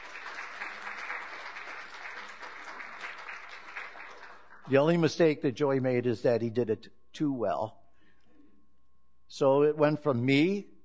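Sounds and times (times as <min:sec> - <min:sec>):
church congregation applauding: 0:00.0 - 0:05.2
speech: 0:04.7 - 0:07.8, 0:09.3 - 0:10.7.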